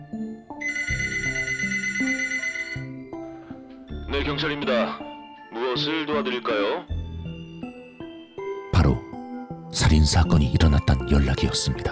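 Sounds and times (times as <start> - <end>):
steady music: 0.0 - 11.8
telephone bell ringing: 0.6 - 3.1
speech: 4.2 - 5.1, 5.8 - 6.9, 9.8 - 11.8.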